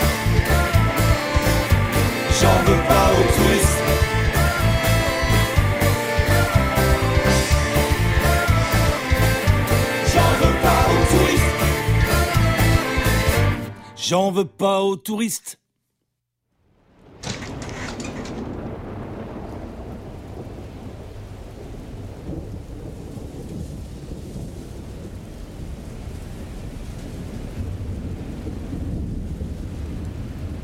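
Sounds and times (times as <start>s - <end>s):
steady heavy rain: 0.0s - 13.5s, 16.9s - 30.6s
speech: 14.1s - 15.6s
loud crack of thunder: 17.0s - 30.6s.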